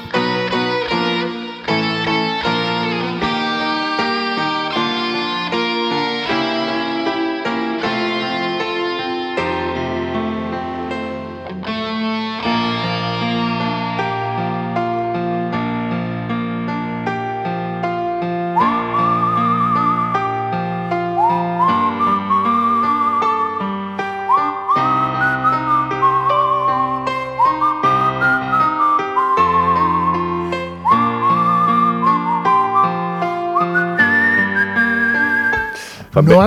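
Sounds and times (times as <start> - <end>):
full steady instrumental accompaniment: 0.0 - 36.4
human whistled melody with wavering vibrato: 18.5 - 36.4
speech: 36.2 - 36.4.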